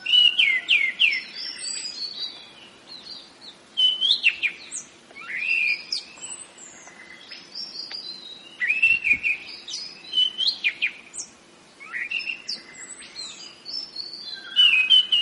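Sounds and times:
orange-headed thrush singing rolling whistled song: 0:00.0 - 0:15.2.

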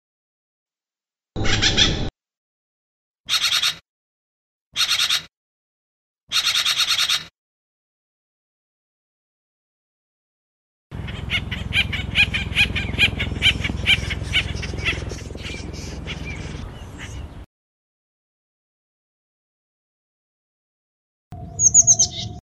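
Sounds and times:
acorn woodpecker giving harsh rhythmic repeated calls: 0:01.4 - 0:02.1, 0:03.3 - 0:03.8, 0:04.8 - 0:05.3, 0:06.3 - 0:07.3, 0:11.0 - 0:17.3, 0:21.4 - 0:22.4.

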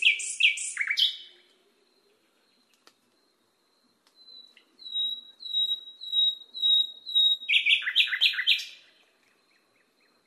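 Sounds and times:
nightingale song training recording for cage birds: 0:00.0 - 0:10.2.

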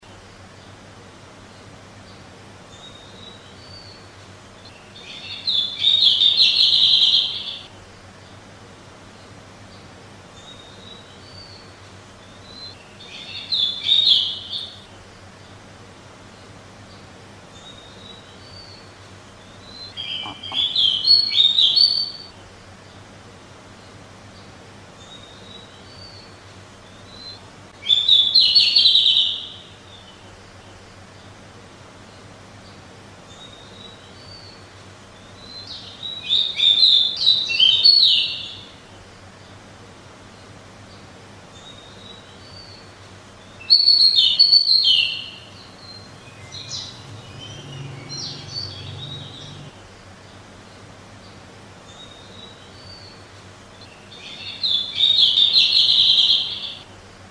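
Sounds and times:
decu bird chirping: 0:01.4 - 0:08.4, 0:09.0 - 0:23.1, 0:23.7 - 0:31.3, 0:32.0 - 0:39.5, 0:40.4 - 0:56.9.

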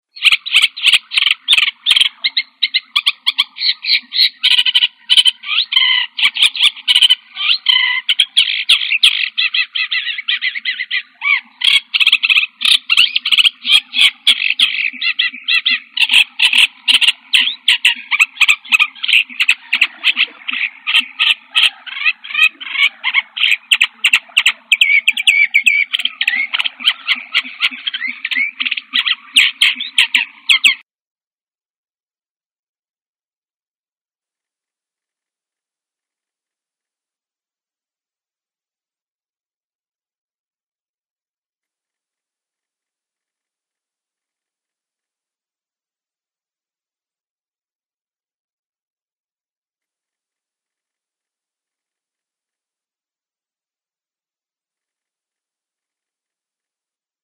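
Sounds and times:
forest birds: 0:00.0 - 0:30.8.

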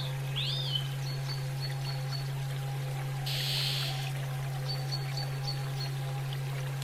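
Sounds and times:
low hum: 0:00.2 - 0:06.8
female Oriental magpie-robin whistling: 0:03.3 - 0:04.1.

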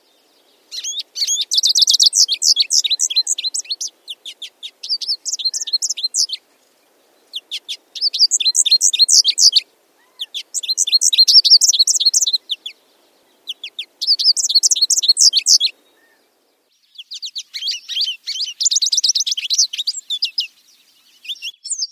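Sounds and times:
American goldfinch calling: 0:00.0 - 0:21.5.

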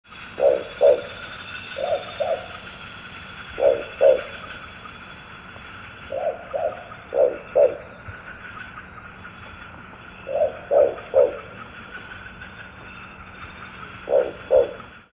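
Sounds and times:
Ninox squamipila calling: 0:00.2 - 0:02.8, 0:03.4 - 0:04.7, 0:06.1 - 0:09.2, 0:10.2 - 0:12.6, 0:13.3 - 0:15.1.

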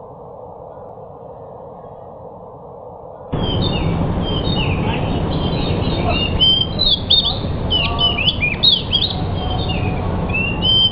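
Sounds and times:
steady low rumbling hiss: 0:00.0 - 0:10.8
trained pied bush chat singing: 0:03.3 - 0:10.8.

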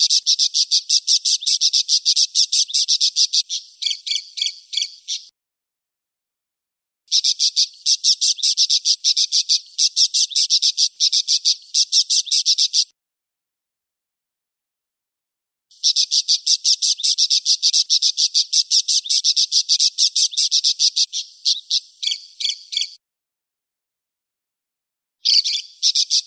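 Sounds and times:
parakeet chatter: 0:00.0 - 0:05.3, 0:07.1 - 0:12.8, 0:15.8 - 0:22.9.

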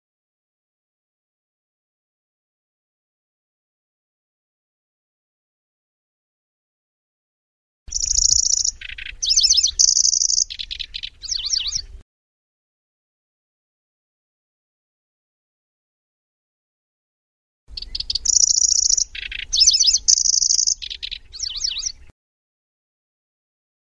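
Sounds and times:
Grasshopper warbler song: 0:07.9 - 0:12.0, 0:17.7 - 0:22.1.

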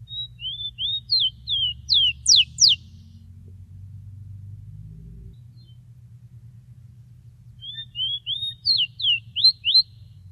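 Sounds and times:
bird whistling: 0:00.0 - 0:02.9, 0:07.6 - 0:10.0
low hum: 0:01.3 - 0:10.2.

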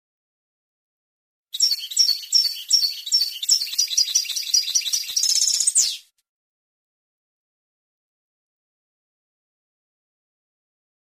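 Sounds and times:
European goldfinch singing: 0:01.5 - 0:06.1.

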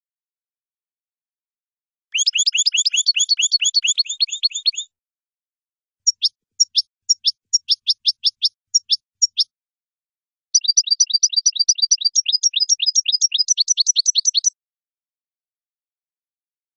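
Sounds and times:
European goldfinch song: 0:02.1 - 0:04.9, 0:06.0 - 0:09.5, 0:10.6 - 0:14.6.

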